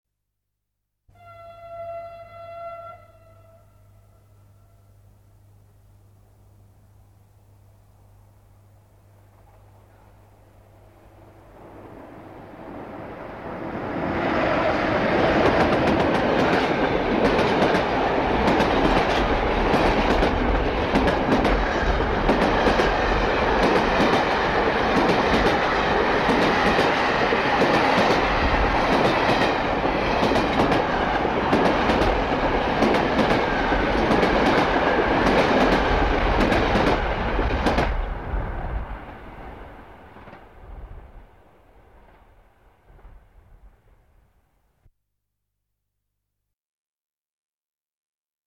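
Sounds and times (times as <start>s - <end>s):
train whistle: 1.1s - 5.4s
train passing fast: 10.7s - 43.1s.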